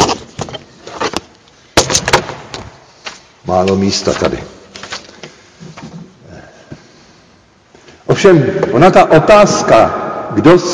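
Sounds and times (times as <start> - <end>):
papers being shuffled and rustled: 0.0 - 6.2
speech: 3.5 - 4.6, 8.2 - 10.7.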